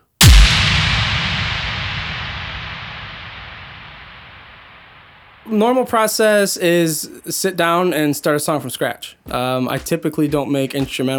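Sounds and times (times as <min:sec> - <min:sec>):
airstrike sound effect blast layered into a song: 0:00.0 - 0:05.4
speech: 0:05.5 - 0:11.1.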